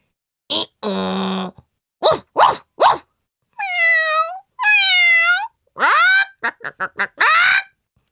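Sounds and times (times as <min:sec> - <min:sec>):
dog barking: 0:02.0 - 0:03.0
cat meowing: 0:03.6 - 0:05.6
chicken squawking: 0:05.0 - 0:07.8.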